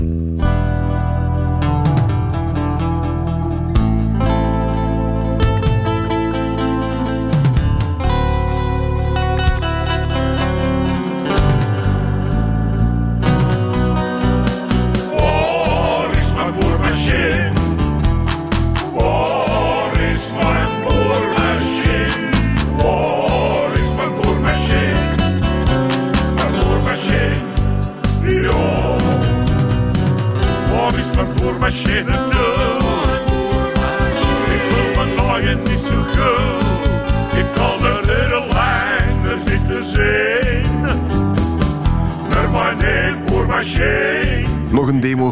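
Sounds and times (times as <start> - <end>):
heavily effected distorted guitar: 0.0 - 44.8
loud full rock band: 0.1 - 44.7
driving drums: 7.3 - 8.2, 13.3 - 44.7.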